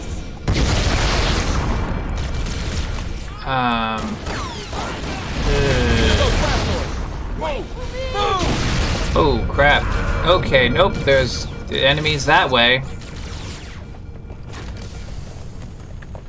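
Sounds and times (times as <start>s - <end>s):
video game explosions: 0.0s - 16.2s
speech: 3.5s - 4.4s, 9.2s - 13.0s.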